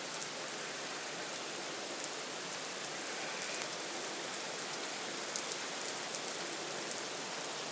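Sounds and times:
heavy rain with big fat drops: 0.0 - 7.6.

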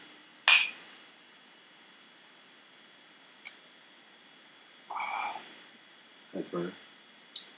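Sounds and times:
glasses clinking in a toast: 0.5 - 0.8
speech: 6.4 - 6.9.

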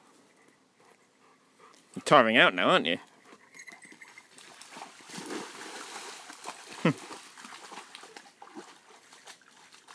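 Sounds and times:
speech: 2.0 - 3.1
dogs splashing in water, one a guide dog: 4.3 - 9.9.

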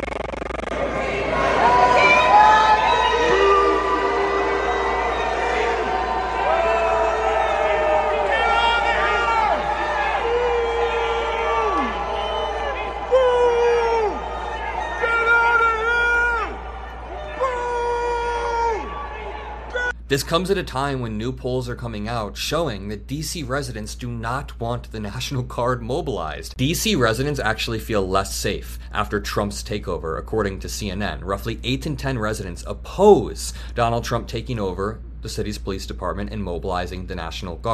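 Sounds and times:
loud crowd booing and jeering at people walking in: 0.1 - 20.0
speech: 20.2 - 37.7.

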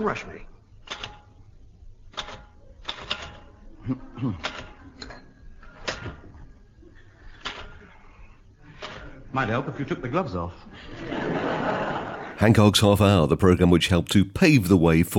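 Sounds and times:
speech: 0.0 - 0.6, 3.9 - 4.6, 9.3 - 11.8, 12.4 - 15.1
typewriter keys clacking as invitations are typed out: 2.1 - 3.5
laughter: 8.6 - 13.0.

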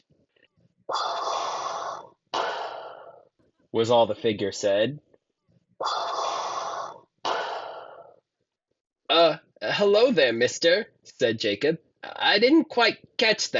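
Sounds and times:
voice imitating heavy mechanical respirator breathing: 0.9 - 3.3, 5.8 - 8.2
speech: 3.7 - 5.1, 9.8 - 13.5.

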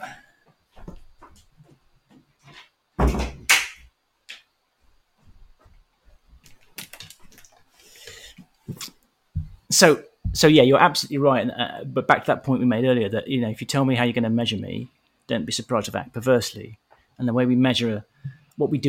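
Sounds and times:
door swinging shut with a heavy thud: 3.0 - 3.8
small clicks and knocks: 6.4 - 7.6
speech: 9.8 - 18.8.

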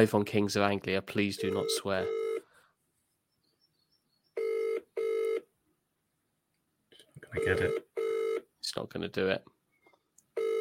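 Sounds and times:
speech: 0.0 - 2.2, 7.4 - 8.0, 8.7 - 9.5
outgoing call to a mobile phone double ring: 4.4 - 5.4, 7.4 - 8.4, 10.4 - 10.5.

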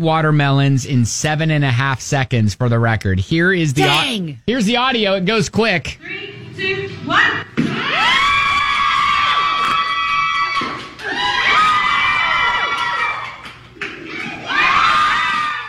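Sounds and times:
speech: 0.0 - 8.2
crowd screaming and shrieking during watermelon crushing: 7.6 - 15.6.

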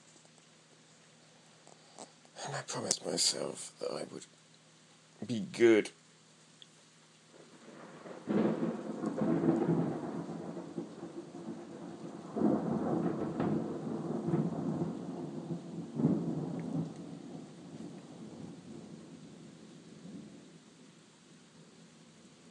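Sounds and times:
steady hiss of rain: 0.0 - 22.4
speech: 2.4 - 4.4, 5.2 - 6.0
deep rolling thunder rumbles: 7.4 - 20.5.

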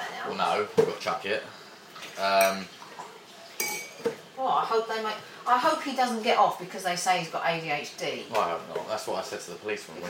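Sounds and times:
speech: 0.3 - 2.8, 4.0 - 10.0
crockery clinking in a dishwasher: 2.3 - 2.7, 3.6 - 4.2
plates and cutlery clattering in a dishwasher: 3.6 - 4.2.

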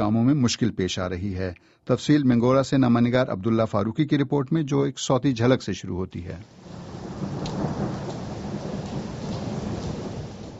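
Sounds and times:
speech: 0.1 - 6.6
steady rain falling at night over an earthquake-hit area: 6.4 - 10.5.

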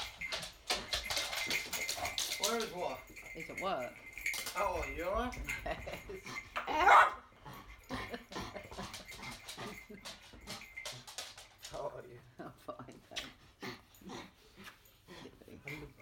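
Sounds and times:
dog panting: 0.0 - 6.7, 7.3 - 12.0, 12.6 - 16.0
speech: 2.4 - 7.2, 12.0 - 13.4
dog yipping: 6.7 - 7.2.

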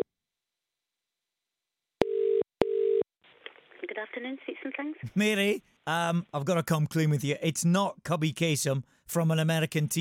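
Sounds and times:
telephone ringback tone during outgoing call: 2.0 - 3.0
speech: 4.0 - 9.9.

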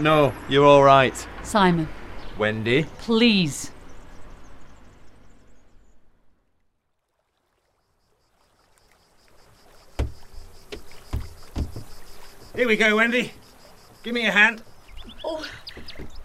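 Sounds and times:
speech: 0.0 - 3.8, 12.6 - 13.4, 14.0 - 16.1
water lapping and swishing around a small canal boat: 6.4 - 16.2
loud wooden thumps of someone stepping aboard a canal boat: 9.9 - 12.8, 14.9 - 16.2.

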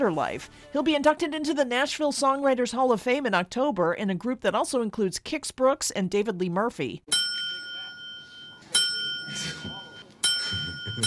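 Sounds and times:
speech: 0.0 - 7.3
small hand bell ringing: 7.1 - 11.0.

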